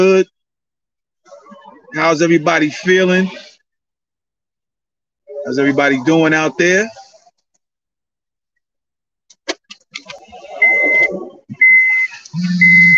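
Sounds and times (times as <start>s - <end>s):
speech: 0.0s - 0.3s, 1.9s - 3.5s, 5.4s - 7.0s, 12.4s - 12.9s
clicks: 9.3s - 10.4s
short high-pitched electronic beeps: 10.4s - 12.9s.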